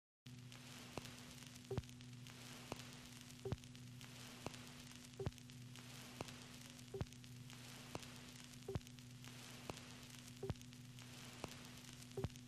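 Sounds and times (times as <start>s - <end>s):
vinyl record surface noise: 0.3s - 12.4s.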